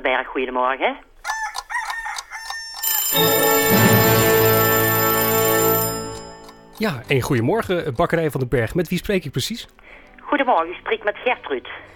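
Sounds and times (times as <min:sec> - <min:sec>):
speech: 0:00.0 - 0:01.1, 0:03.1 - 0:03.5, 0:06.8 - 0:11.9
telephone ringing on a call to a bakery: 0:02.8 - 0:07.0.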